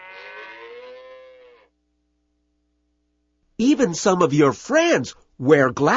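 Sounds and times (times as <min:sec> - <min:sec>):
cow mooing: 0:00.0 - 0:01.7
speech: 0:03.6 - 0:05.9.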